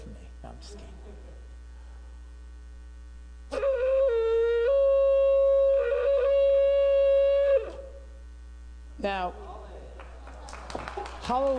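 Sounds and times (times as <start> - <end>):
shofar ram's horn blown in a long blast: 3.5 - 8.1
speech: 9.1 - 9.4, 11.3 - 11.5.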